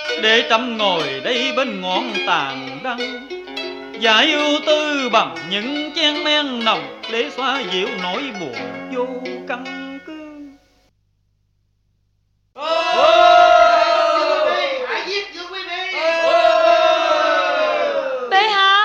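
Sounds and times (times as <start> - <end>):
speech: 0.2 - 3.4, 4.0 - 9.8
crowd of commoners shouting and clamoring: 12.6 - 18.7.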